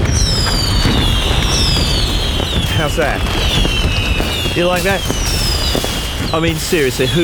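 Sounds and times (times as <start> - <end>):
deep rumbling boom: 0.0 - 7.2
fireworks crackling from a volcano of fireworks: 0.0 - 7.2
shrill descending firework whistles: 0.1 - 7.2
speech: 2.8 - 3.8, 4.6 - 7.2.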